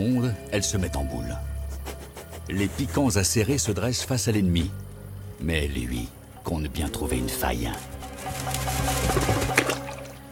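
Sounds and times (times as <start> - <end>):
speech: 0.0 - 1.6, 2.5 - 4.8, 5.4 - 7.9
water splashing as a badger plunges into it: 7.9 - 10.3.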